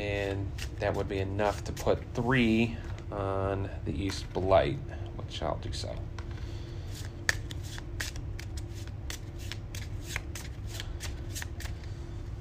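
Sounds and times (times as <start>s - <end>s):
speech: 0.0s - 6.1s
low constant hum: 0.0s - 12.4s
encounter deck of game cards being shuffled: 0.2s - 2.1s, 6.9s - 12.0s.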